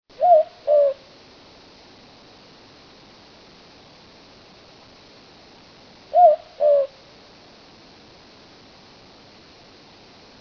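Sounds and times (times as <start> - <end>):
southern boobook call: 0.1 - 1.1, 6.1 - 7.0.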